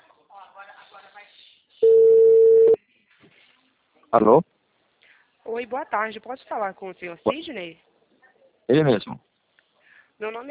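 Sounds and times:
ringback tone of an outgoing telephone call: 0:01.8 - 0:02.8
speech: 0:04.1 - 0:04.5, 0:05.5 - 0:07.9, 0:08.7 - 0:09.3, 0:10.2 - 0:10.4.

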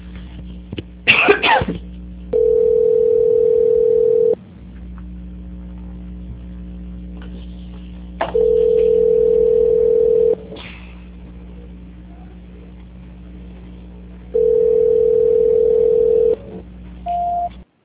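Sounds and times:
low constant hum: 0:00.0 - 0:17.8
telephone tones during a call transfer: 0:02.4 - 0:04.4, 0:08.3 - 0:10.4, 0:14.4 - 0:17.6.

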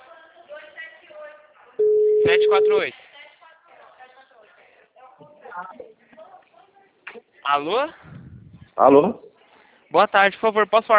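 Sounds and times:
telephone ringing tone after a number is dialed: 0:01.8 - 0:02.8
speech: 0:02.2 - 0:03.0, 0:05.6 - 0:06.2, 0:07.1 - 0:08.2, 0:08.8 - 0:09.3, 0:09.9 - 0:10.9.

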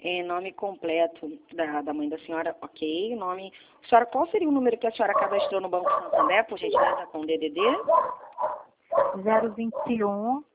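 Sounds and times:
speech: 0:00.0 - 0:10.5
dog yowling: 0:05.1 - 0:07.1, 0:07.7 - 0:10.0
dog barking: 0:05.1 - 0:10.0.

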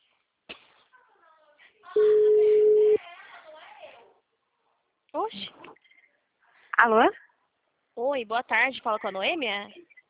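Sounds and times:
telephone ringback tone on an outgoing call: 0:02.0 - 0:03.0
speech: 0:06.8 - 0:07.2, 0:08.0 - 0:09.8.

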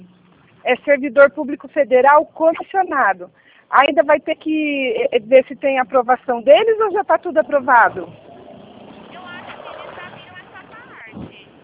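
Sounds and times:
speech: 0:00.6 - 0:08.2
vehicle rumbling past outside: 0:06.9 - 0:11.6.

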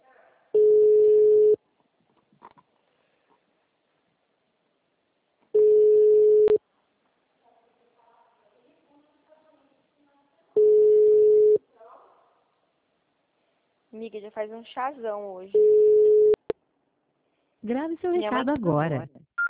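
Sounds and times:
faint noise: 0:00.0 - 0:19.4
ringback tone of an outgoing telephone call to voicemail: 0:00.6 - 0:01.6, 0:05.6 - 0:06.6, 0:10.6 - 0:11.6, 0:15.6 - 0:16.4
speech: 0:14.0 - 0:16.0, 0:17.6 - 0:19.2.

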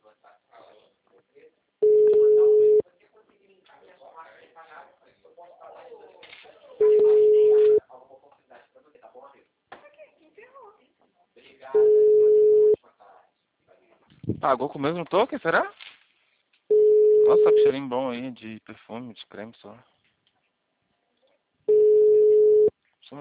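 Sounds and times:
telephone ringback tone on an outgoing call: 0:01.8 - 0:02.8, 0:06.8 - 0:07.8, 0:11.8 - 0:12.8, 0:16.7 - 0:17.7, 0:21.7 - 0:22.7
speech: 0:14.4 - 0:15.8, 0:17.3 - 0:19.9
rustling: 0:15.6 - 0:16.7.

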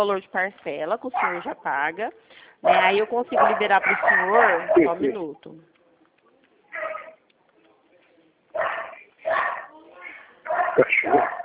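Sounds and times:
speech: 0:00.0 - 0:05.7, 0:10.8 - 0:11.4
dog barking: 0:01.1 - 0:01.6, 0:02.6 - 0:05.0, 0:06.7 - 0:07.2, 0:08.6 - 0:11.4.

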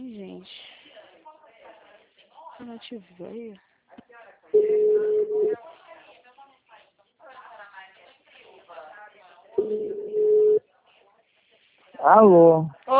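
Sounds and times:
speech: 0:02.6 - 0:03.7, 0:12.1 - 0:12.9
telephone busy tone after a dropped call: 0:04.6 - 0:05.6, 0:09.6 - 0:10.6.

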